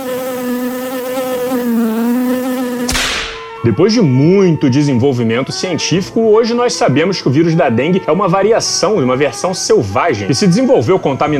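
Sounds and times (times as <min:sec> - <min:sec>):
mosquito whine: 0:00.0 - 0:04.6
brief click: 0:02.9 - 0:03.4
speech: 0:03.6 - 0:11.3.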